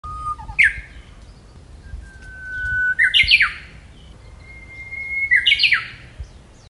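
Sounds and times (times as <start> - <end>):
Japanese bush warbler song with long whistle and warbled flourish: 0.0 - 6.7.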